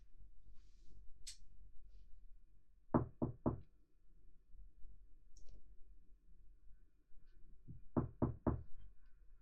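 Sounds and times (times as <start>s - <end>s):
firm knocks on a door: 2.9s - 3.7s, 7.7s - 8.7s.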